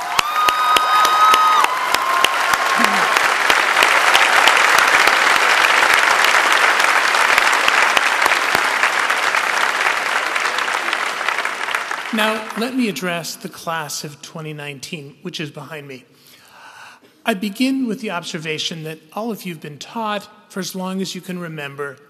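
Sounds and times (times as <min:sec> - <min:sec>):
faint cheers: 0:00.0 - 0:05.2
large audience applauding at a graduation ceremony: 0:00.0 - 0:13.1
speech: 0:12.2 - 0:16.3, 0:17.2 - 0:22.0.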